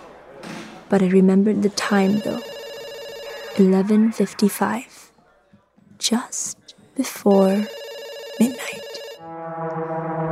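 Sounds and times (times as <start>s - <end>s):
speech: 0.9s - 2.5s, 3.6s - 5.0s, 6.0s - 7.8s, 8.4s - 9.9s
telephone bell ringing at a police post: 1.7s - 4.3s, 7.3s - 9.2s.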